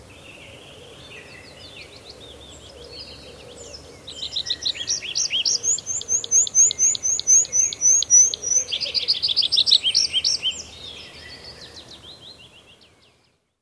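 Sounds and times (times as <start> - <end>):
tree pipit singing trills and twittering phrases: 4.2 - 10.7.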